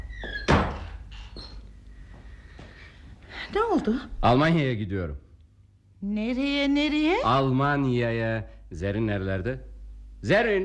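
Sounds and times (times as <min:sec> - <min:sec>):
door pushed shut with a solid thud: 0:00.2 - 0:01.3
speech: 0:03.5 - 0:05.2, 0:06.0 - 0:10.6.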